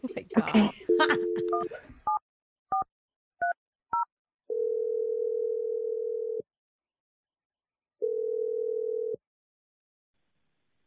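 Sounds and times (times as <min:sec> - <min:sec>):
speech: 0:00.4 - 0:02.0
long steady telephone ring tones: 0:00.9 - 0:01.7, 0:04.5 - 0:06.4, 0:08.0 - 0:09.2
telephone number dialed in touch-tone beeps: 0:00.9 - 0:04.8.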